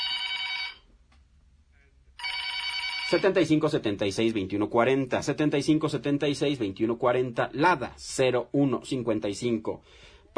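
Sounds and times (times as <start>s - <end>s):
telephone ringing inside a radio studio booth: 0.0s - 0.9s, 2.2s - 3.7s
speech: 3.1s - 10.3s.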